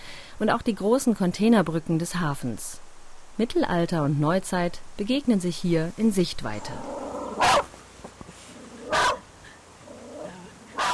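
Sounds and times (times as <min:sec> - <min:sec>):
faint low noise: 0:00.0 - 0:10.9
speech: 0:00.4 - 0:07.6
dog barking at a passing car: 0:07.4 - 0:07.7, 0:08.9 - 0:09.2.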